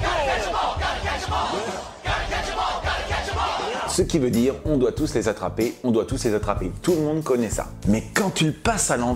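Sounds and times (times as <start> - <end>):
loud chorus of voices singing a cartoon theme song: 0.0 - 4.0
steady backing music: 0.0 - 9.1
speech: 4.0 - 9.1.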